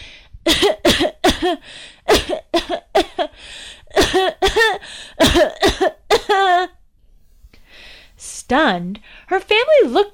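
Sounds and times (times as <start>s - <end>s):
person coughing in a holiday tune rhythm: 0.5s - 6.8s
speech: 8.5s - 10.1s.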